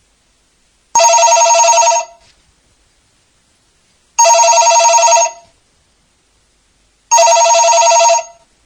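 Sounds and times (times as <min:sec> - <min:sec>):
bright electronic telephone trilling ring: 0:01.0 - 0:02.2, 0:04.2 - 0:05.4, 0:07.1 - 0:08.4.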